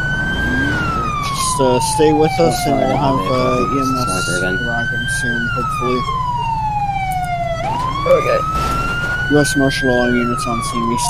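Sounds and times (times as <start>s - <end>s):
constant low engine rumble: 0.0s - 11.0s
police siren wailing: 0.0s - 11.0s
speech: 1.6s - 6.3s, 8.0s - 8.7s, 9.3s - 11.0s.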